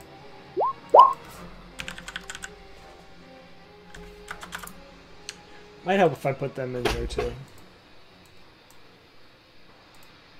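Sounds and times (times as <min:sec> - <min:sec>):
rising tonal blips: 0:00.5 - 0:01.3
typing on a failing computer keyboard: 0:01.8 - 0:02.6, 0:04.3 - 0:04.7
speech: 0:05.8 - 0:07.6.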